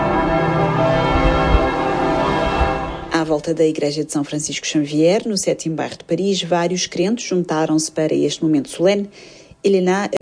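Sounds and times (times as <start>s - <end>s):
church bells ringing across Paris: 0.0s - 3.5s
speech: 3.3s - 10.2s.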